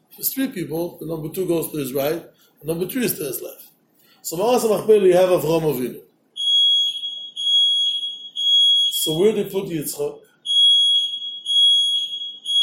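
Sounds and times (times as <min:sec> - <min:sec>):
speech: 0:00.2 - 0:06.1, 0:09.0 - 0:10.3
alarm system beeping in shrill electronic tones: 0:06.4 - 0:09.4, 0:10.2 - 0:12.6.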